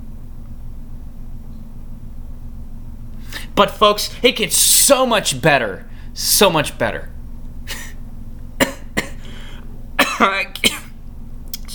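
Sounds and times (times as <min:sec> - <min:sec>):
speech: 0:03.6 - 0:07.1, 0:10.2 - 0:10.4
harsh coughs right on the microphone: 0:08.6 - 0:09.4, 0:10.0 - 0:11.0.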